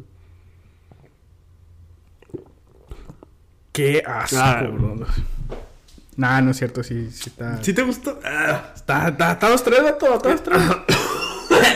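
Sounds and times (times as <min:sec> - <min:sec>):
low hum: 0:00.0 - 0:11.7
person sipping and swallowing beer: 0:00.8 - 0:01.2, 0:02.0 - 0:03.4
soft wet gulps: 0:02.0 - 0:03.4
speech: 0:03.8 - 0:05.6, 0:06.2 - 0:10.9.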